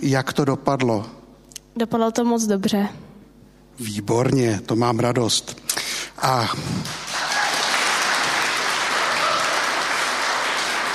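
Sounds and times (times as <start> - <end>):
speech: 0.0 - 1.2, 1.8 - 3.1, 3.8 - 7.0
audience applause: 6.6 - 10.9.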